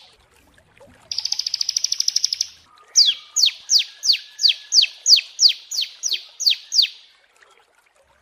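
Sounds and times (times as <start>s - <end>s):
prinia song with buzzy trill and downslurred notes: 1.1s - 7.2s.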